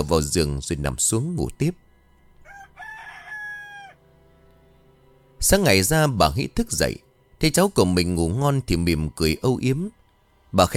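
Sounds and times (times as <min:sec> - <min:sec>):
speech: 0:00.0 - 0:01.9, 0:05.4 - 0:10.7
rooster crowing: 0:02.4 - 0:04.1.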